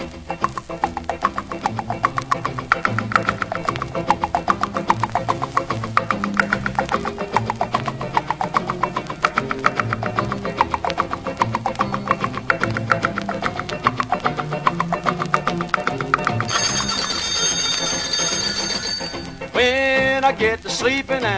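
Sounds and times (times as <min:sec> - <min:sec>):
upbeat music: 0:00.0 - 0:21.3
alarm clock bell ringing: 0:16.5 - 0:19.4.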